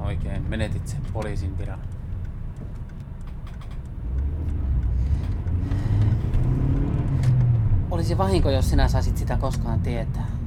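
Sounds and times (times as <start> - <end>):
car engine running as the vehicle is driven out of the city: 0.0 - 10.4
speech: 0.2 - 2.0, 7.9 - 10.4.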